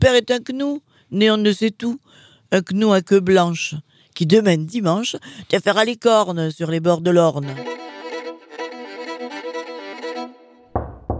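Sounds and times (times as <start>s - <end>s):
speech: 0.0s - 7.8s
tuneful sustained melody: 7.4s - 10.7s
sharp loud knocks on a door: 10.8s - 11.1s.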